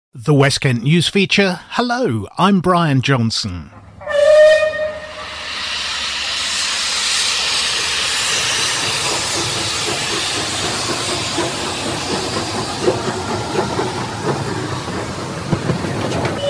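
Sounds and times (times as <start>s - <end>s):
speech: 0.1s - 3.8s
steam express locomotive whistle blast: 4.0s - 9.5s, 16.2s - 16.4s
steam escaping from a steam express locomotive: 4.1s - 16.4s.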